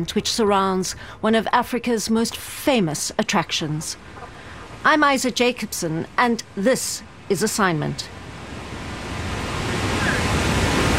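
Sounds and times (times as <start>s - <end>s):
speech: 0.0s - 4.2s, 4.8s - 8.2s
huge waterfall roaring on the Zambezi River on the Zambia–Zimbabwe border: 8.3s - 10.9s.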